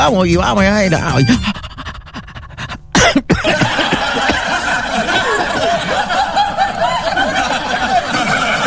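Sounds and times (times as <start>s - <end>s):
speech: 0.0s - 1.7s, 3.0s - 3.2s
busy hum: 0.0s - 8.6s
sharp cough: 2.9s - 5.8s
laughter: 3.4s - 8.6s.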